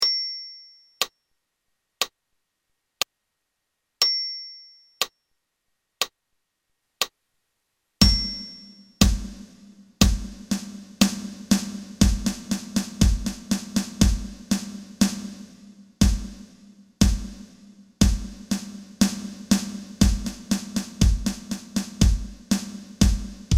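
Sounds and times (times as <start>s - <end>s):
percussion: 8.0s - 23.5s.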